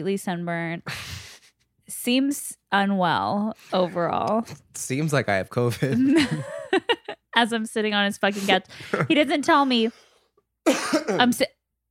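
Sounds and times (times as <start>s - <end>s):
speech: 0.0s - 1.1s, 1.9s - 10.0s, 10.6s - 11.6s
person imitating a cough: 10.7s - 11.5s.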